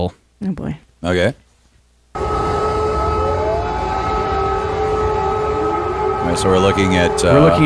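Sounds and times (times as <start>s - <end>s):
speech: 0.0s - 1.4s, 6.2s - 7.6s
air raid siren wailing: 2.2s - 7.6s.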